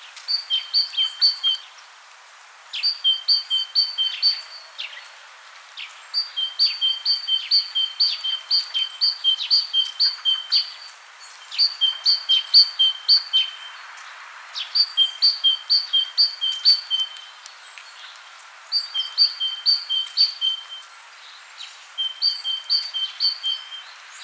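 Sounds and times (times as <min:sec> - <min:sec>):
great tit singing: 0:00.3 - 0:01.6, 0:02.8 - 0:04.7, 0:06.2 - 0:13.8, 0:14.6 - 0:17.4, 0:18.7 - 0:20.9, 0:21.6 - 0:24.2.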